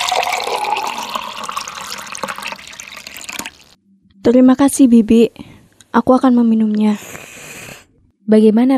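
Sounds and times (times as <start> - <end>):
sugarcane juice pouring into a container: 0.0 - 3.8
speech: 4.2 - 7.1, 8.3 - 8.7.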